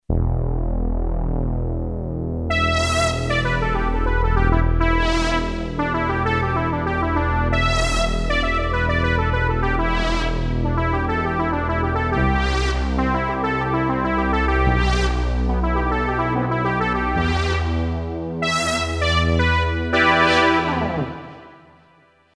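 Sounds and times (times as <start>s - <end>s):
synthesized brass from Akai SG01v: 0.1s - 22.3s.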